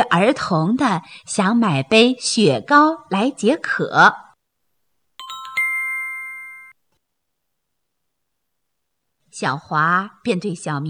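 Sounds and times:
speech: 0:00.0 - 0:04.2, 0:09.4 - 0:10.8
ice cream vendor's bell chiming: 0:05.2 - 0:06.8.

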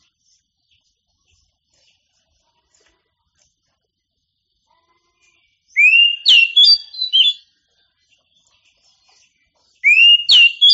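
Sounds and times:
Oriental magpie-robin singing whistled phrases: 0:05.8 - 0:07.4, 0:09.8 - 0:10.7.

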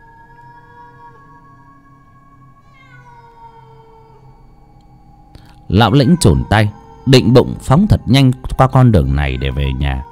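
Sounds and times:
female cat in heat caterwauling at night in a graveyard: 0:00.0 - 0:01.8, 0:02.5 - 0:04.5, 0:05.7 - 0:10.0
speech: 0:05.7 - 0:10.0.

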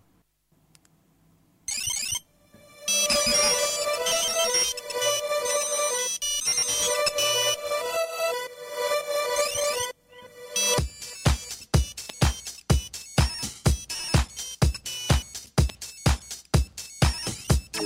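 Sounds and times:
electronic music track with ringtone-like beeping melody: 0:02.5 - 0:17.8.

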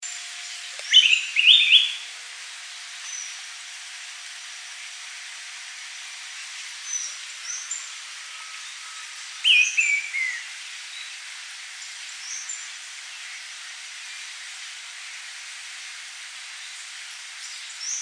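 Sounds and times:
faint hiss: 0:00.0 - 0:18.0
bird song twittering: 0:00.4 - 0:02.0, 0:03.0 - 0:03.4, 0:06.0 - 0:11.2, 0:11.8 - 0:13.4, 0:17.4 - 0:18.0.

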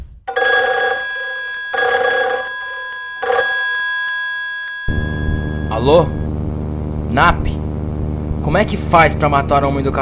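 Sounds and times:
telephone bell ringing: 0:00.3 - 0:06.3
speech: 0:05.9 - 0:06.2, 0:07.2 - 0:07.6, 0:08.4 - 0:09.9.

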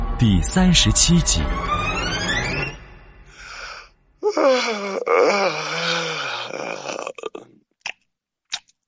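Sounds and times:
speech: 0:00.2 - 0:02.3
man yawning at an interrogation table: 0:03.4 - 0:07.4.

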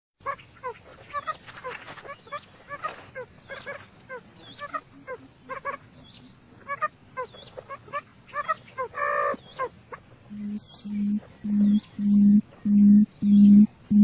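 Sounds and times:
quail giving short downslurred and hooked calls: 0:00.2 - 0:05.9, 0:06.6 - 0:14.0.

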